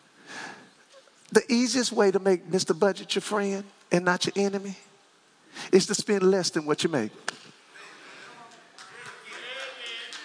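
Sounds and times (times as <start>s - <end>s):
speech: 1.3s - 4.9s, 5.6s - 7.4s
murmur of voices: 7.7s - 10.2s
crowd doing a rhythmic three-beat clap: 8.5s - 10.2s.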